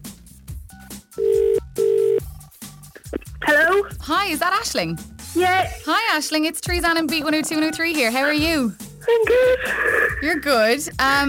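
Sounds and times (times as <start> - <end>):
telephone ringback after a call is dialled: 1.2 - 2.2
speech: 4.1 - 11.2.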